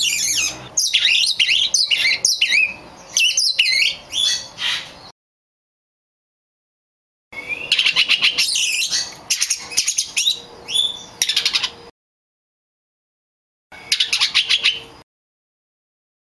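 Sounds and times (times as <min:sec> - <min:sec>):
Oriental magpie-robin of the kacer lutung cebu variety singing: 0:00.0 - 0:05.1, 0:07.4 - 0:11.9, 0:13.8 - 0:15.0.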